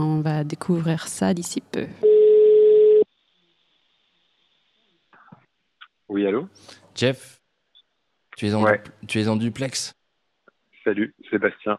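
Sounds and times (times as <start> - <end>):
speech: 0.0 - 2.0, 6.1 - 7.4, 8.4 - 10.0, 10.8 - 11.7
telephone ringback tone while calling a colleague: 2.0 - 3.0.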